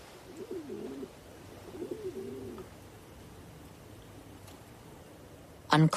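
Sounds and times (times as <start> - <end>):
pigeon cooing outside a glass balcony door: 0.0 - 2.8
quiet hiss: 0.0 - 5.9
speech: 5.8 - 5.9.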